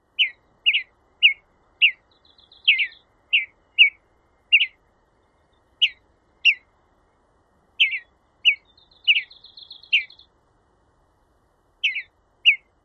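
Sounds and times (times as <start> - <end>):
mountain bluebird calls at dusk: 0.2 - 6.7, 7.8 - 10.3, 11.8 - 12.7.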